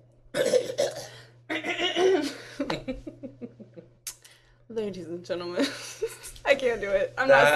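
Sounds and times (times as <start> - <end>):
person clearing throat loudly: 0.4 - 2.4
speech: 4.8 - 6.0, 6.6 - 7.5.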